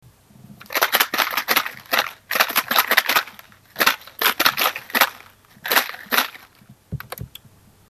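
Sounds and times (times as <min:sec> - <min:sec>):
maracas shaking: 0:00.6 - 0:06.7.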